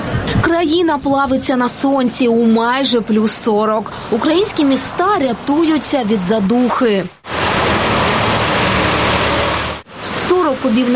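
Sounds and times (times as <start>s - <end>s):
speech: 0.6s - 7.2s, 10.5s - 10.9s
water sprayed onto city streets of Lviv Ukraine to bring down heat: 7.2s - 10.9s.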